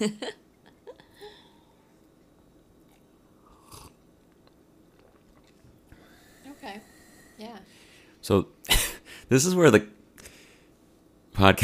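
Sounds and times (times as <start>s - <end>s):
speech: 0.0s - 0.4s, 8.3s - 8.6s, 9.3s - 10.0s, 11.4s - 11.6s
slurping sips of Colombian coffee into a microphone: 4.9s - 5.8s.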